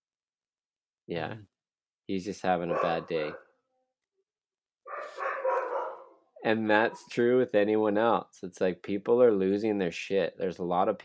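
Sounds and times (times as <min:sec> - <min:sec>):
speech: 0:01.1 - 0:01.5, 0:02.1 - 0:03.5, 0:06.4 - 0:11.0
dog barking: 0:02.6 - 0:03.6, 0:04.9 - 0:06.2.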